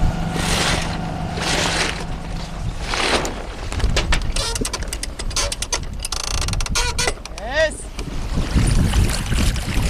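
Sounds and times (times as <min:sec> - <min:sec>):
water washing past the hull of a sailboat under sail: 0:00.0 - 0:07.2, 0:07.8 - 0:09.8
steady low rush of wind buffeting the microphone: 0:02.2 - 0:09.8.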